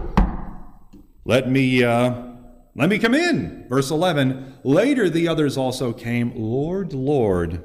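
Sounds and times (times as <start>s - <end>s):
knock on a door: 0.0s - 0.7s
speech: 1.3s - 7.6s.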